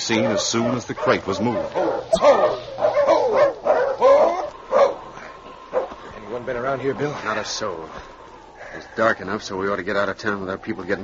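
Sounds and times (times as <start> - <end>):
speech: 0.1 - 3.4, 6.3 - 11.0
big fighting dog barking and whining in a crate: 0.2 - 5.0.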